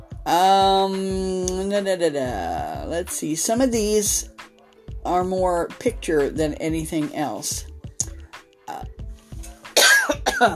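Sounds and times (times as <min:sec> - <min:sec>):
speech: 0:00.2 - 0:04.4, 0:05.0 - 0:07.7, 0:10.4 - 0:10.5
person in a loud coughing fit: 0:09.8 - 0:10.5
throat clearing: 0:09.8 - 0:10.5.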